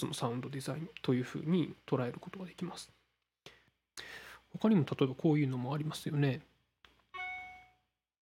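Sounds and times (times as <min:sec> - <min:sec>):
speech: 0:00.0 - 0:03.0, 0:04.0 - 0:06.5
iPhone default email notification chime: 0:07.2 - 0:07.9.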